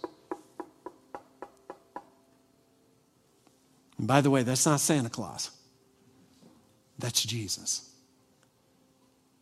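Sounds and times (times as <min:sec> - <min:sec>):
firm knocking on a wooden door: 0:00.0 - 0:02.1
speech: 0:04.0 - 0:05.6, 0:07.0 - 0:07.9.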